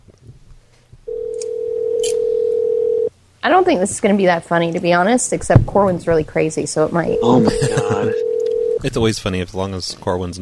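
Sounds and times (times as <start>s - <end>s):
low noise: 0.0s - 10.4s
telephone dial tone: 1.1s - 3.1s, 8.2s - 8.8s
speech: 3.4s - 10.4s
laughter: 7.2s - 8.2s.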